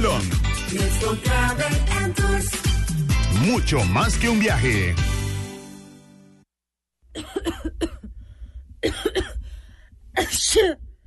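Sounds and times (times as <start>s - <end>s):
speech: 0.2s - 2.6s, 3.4s - 5.2s, 10.2s - 10.8s
harsh coughing from a person with an allergy: 7.2s - 8.2s, 8.8s - 9.4s.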